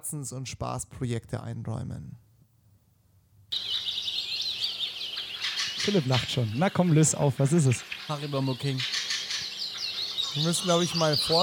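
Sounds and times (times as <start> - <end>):
speech: 0.0 - 2.3, 5.8 - 9.0, 10.3 - 11.4
dense birdsong chirping and twittering: 3.5 - 11.4.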